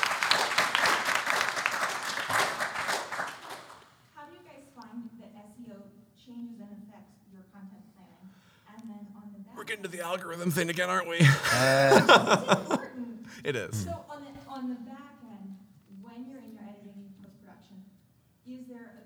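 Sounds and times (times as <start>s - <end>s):
audience clapping: 0.0s - 3.8s, 9.6s - 12.8s, 13.4s - 14.0s
laughter: 9.6s - 14.0s
speech: 9.7s - 14.1s.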